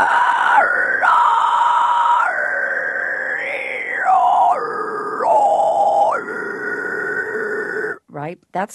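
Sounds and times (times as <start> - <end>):
shrieking vocal growl using false vocal cords: 0.0 - 8.0
speech: 8.3 - 8.7.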